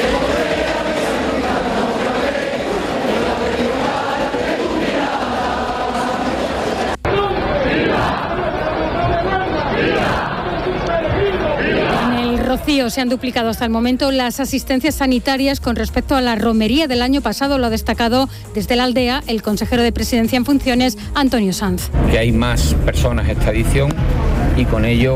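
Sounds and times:
dense crowd roaring and chattering at the brotherhoods' presentation during a pilgrimage: 0:00.0 - 0:13.9, 0:21.9 - 0:25.1
speech: 0:12.7 - 0:25.1.

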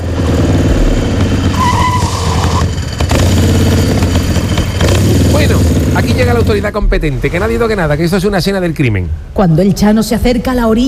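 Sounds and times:
motorcycle tire screech skidding to a stop: 0:00.0 - 0:05.6
motorcycle engine revving: 0:00.0 - 0:06.8
speech: 0:06.0 - 0:10.8.

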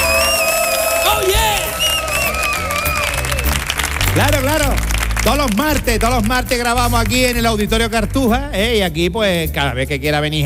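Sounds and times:
whoops from the crowd: 0:00.0 - 0:03.6
audience cheering and applauding in an auditorium: 0:00.0 - 0:07.6
speech: 0:04.2 - 0:10.4.

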